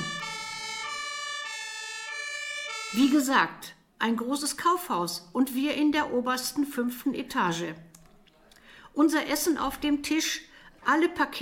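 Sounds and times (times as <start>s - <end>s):
electronic fire alarm siren in a large department store: 0.0s - 3.4s
speech: 2.9s - 7.9s, 9.0s - 11.4s.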